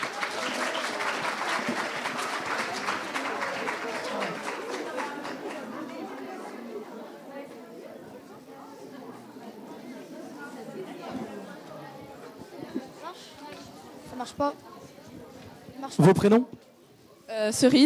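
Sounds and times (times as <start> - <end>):
audience applauding middle school pupils: 0.0 - 6.4
crowd chatter and voices: 0.0 - 17.8
speech: 14.4 - 14.6, 16.0 - 16.6, 17.4 - 17.8.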